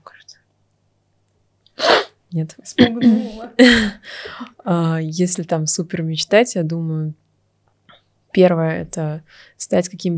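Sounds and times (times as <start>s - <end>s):
loud sneeze: 1.8s - 2.2s
speech: 2.3s - 7.2s, 8.4s - 10.1s
faint breathy sounds: 3.1s - 4.6s, 9.3s - 9.6s.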